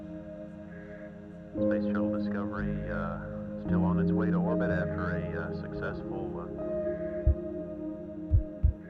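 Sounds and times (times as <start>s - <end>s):
speech: 1.6s - 6.8s
heartbeat thumps: 7.2s - 7.5s, 8.3s - 8.8s.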